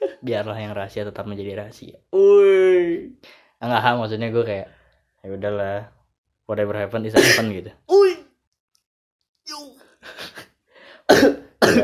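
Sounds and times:
speech: 0:00.2 - 0:08.0
person coughing after choking: 0:07.2 - 0:07.5, 0:11.1 - 0:11.8.

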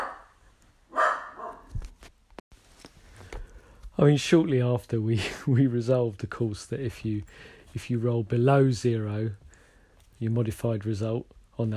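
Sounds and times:
dog barking: 0:00.0 - 0:01.7
faint shuffling and clicking: 0:01.6 - 0:04.0, 0:06.3 - 0:10.6
speech: 0:04.0 - 0:09.4, 0:10.2 - 0:11.7.

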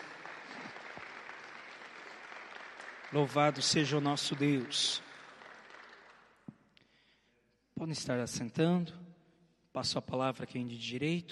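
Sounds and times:
audience applauding: 0:00.0 - 0:06.5
speech: 0:03.1 - 0:05.1, 0:07.9 - 0:09.0, 0:09.8 - 0:11.2.

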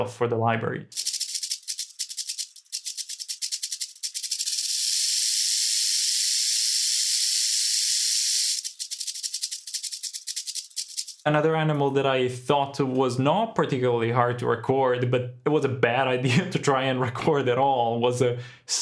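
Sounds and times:
speech: 0:00.0 - 0:01.0, 0:11.2 - 0:18.8
rattlesnake rattling: 0:00.9 - 0:11.3.

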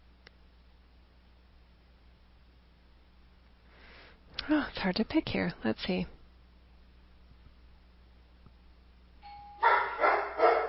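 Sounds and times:
speech: 0:04.5 - 0:06.2
doorbell with one steady electronic tone: 0:09.2 - 0:10.0
dog barking loudly and roughly: 0:09.6 - 0:10.6.

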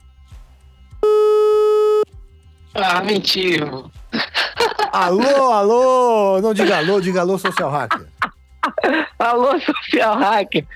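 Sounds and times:
telephone ringing tone: 0:01.0 - 0:02.0
speech: 0:02.8 - 0:04.0, 0:04.9 - 0:08.1, 0:09.2 - 0:10.7
laughter: 0:05.4 - 0:06.1.

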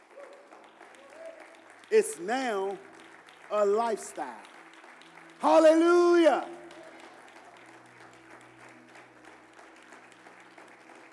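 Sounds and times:
church audience clapping hands in praise after a sermon: 0:00.0 - 0:11.1
speech: 0:01.9 - 0:02.9, 0:03.5 - 0:04.5, 0:05.4 - 0:06.6.

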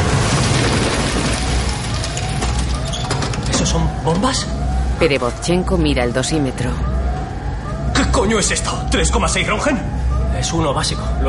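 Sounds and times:
fragments crashing down from a ceiling in a nuclear plant disaster: 0:00.0 - 0:03.7
speech: 0:03.8 - 0:06.9, 0:08.2 - 0:11.2.

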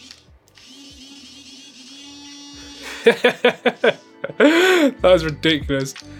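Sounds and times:
device vibration motor buzzing on its fourth setting: 0:00.0 - 0:04.0
laughter: 0:02.8 - 0:04.9
speech: 0:03.0 - 0:06.1.

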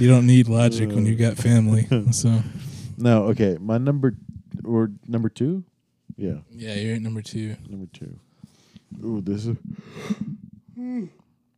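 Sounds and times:
speech: 0:00.0 - 0:08.3, 0:08.9 - 0:11.2
person yawning: 0:09.8 - 0:11.3.

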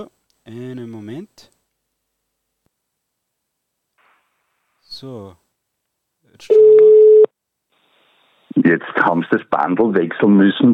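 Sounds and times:
speech: 0:00.0 - 0:01.6, 0:05.0 - 0:05.4, 0:06.4 - 0:07.0, 0:08.6 - 0:10.7
telephone busy tone after a dropped call: 0:06.5 - 0:07.3.

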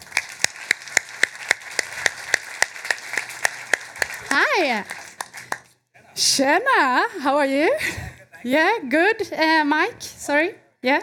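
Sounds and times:
audience clapping in unison on the quay at Marstrand: 0:00.0 - 0:05.8
speech: 0:04.3 - 0:05.0, 0:06.2 - 0:11.0.

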